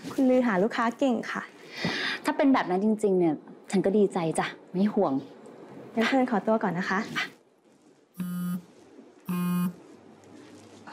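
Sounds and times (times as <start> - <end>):
speech: 0.1 - 5.4, 6.0 - 7.3
phone ringing with an incoming call: 8.2 - 8.6.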